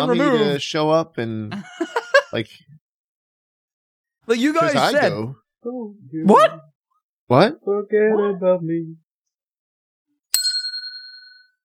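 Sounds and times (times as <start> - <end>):
speech: 0.0 - 2.7, 4.3 - 6.7, 7.3 - 9.0
laughter: 1.5 - 2.5
bicycle bell ringing: 10.4 - 11.6.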